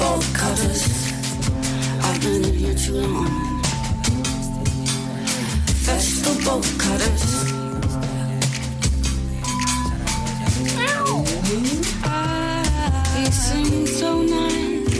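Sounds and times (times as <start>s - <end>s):
singing: 0.0s - 14.9s
band instrumentation in a busy loud song: 10.6s - 11.6s
cat meowing in a song recording: 10.7s - 11.6s.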